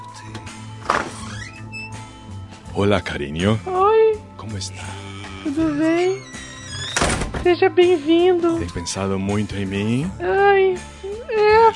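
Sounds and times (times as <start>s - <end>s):
door creaking as it swings: 0.2s - 2.3s, 4.8s - 7.6s
speech: 2.8s - 6.4s, 7.4s - 11.7s.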